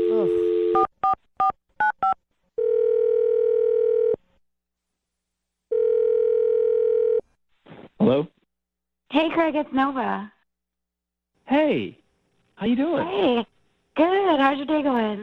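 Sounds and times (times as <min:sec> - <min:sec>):
telephone dial tone: 0:00.0 - 0:01.2, 0:02.0 - 0:04.2, 0:05.7 - 0:07.2
speech: 0:08.1 - 0:08.3, 0:09.1 - 0:10.4, 0:11.5 - 0:12.0, 0:12.6 - 0:15.2.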